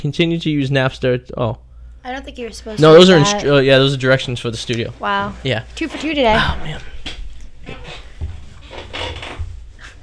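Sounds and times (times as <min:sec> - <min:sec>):
speech: 0:00.0 - 0:06.9
squeaky wooden chair creaking: 0:07.6 - 0:10.0.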